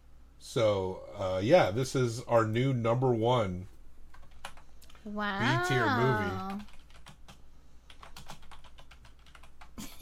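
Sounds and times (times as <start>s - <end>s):
speech: 0.4s - 3.7s, 5.0s - 6.7s
typing on a computer keyboard: 4.1s - 5.0s, 6.2s - 9.8s.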